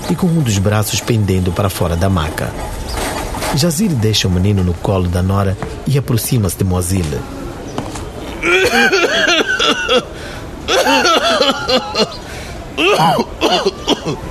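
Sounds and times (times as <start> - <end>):
speech: 0.1 - 7.4, 8.4 - 10.1, 10.9 - 12.2, 12.8 - 14.2
man coughing up blood: 8.4 - 10.1, 10.7 - 12.2, 12.8 - 14.2.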